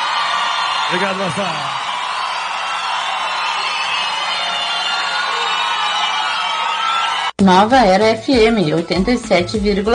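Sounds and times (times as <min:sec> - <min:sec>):
large crowd cheering and clapping: 0:00.0 - 0:07.4
scattered whoops and shouts from crowd: 0:00.0 - 0:07.4
speech: 0:00.9 - 0:01.8, 0:07.4 - 0:09.9.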